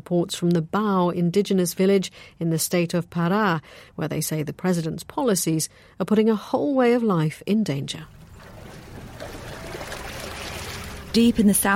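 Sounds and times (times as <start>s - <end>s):
speech: 0.1s - 8.2s, 11.1s - 11.7s
churning water from a rickety one-vehicle car ferry crossing the Curuá River: 8.1s - 11.7s.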